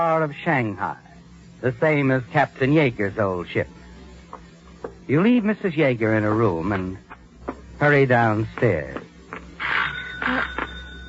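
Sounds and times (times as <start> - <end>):
speech: 0.0 - 3.8, 5.1 - 7.0, 7.8 - 9.1
doorbell chiming in three bright tones: 9.8 - 11.0.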